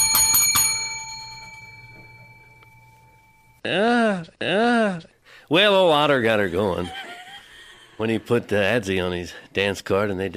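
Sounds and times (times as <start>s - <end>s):
bright metallic bell being struck: 0.0s - 3.6s
speech: 3.6s - 7.0s, 8.0s - 10.3s
laughter: 6.2s - 8.8s.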